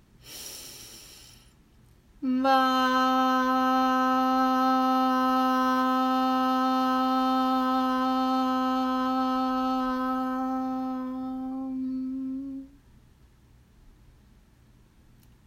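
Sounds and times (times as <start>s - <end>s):
person breathing in: 0.2s - 1.6s
loud steady sustained tone: 2.2s - 12.8s.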